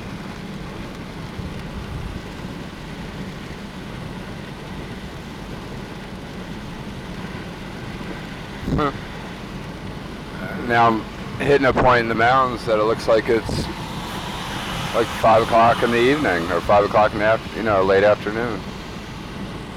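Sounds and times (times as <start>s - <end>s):
steady rain after an intense storm in the mountains: 0.0s - 19.7s
speech: 8.7s - 9.1s, 10.7s - 13.8s, 14.9s - 18.7s.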